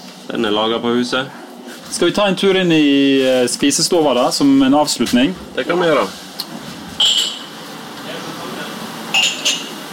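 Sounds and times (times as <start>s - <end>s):
speech: 0.3s - 6.6s
drinking glasses clinking as they are stacked in a dining room: 7.0s - 7.5s, 9.1s - 9.8s.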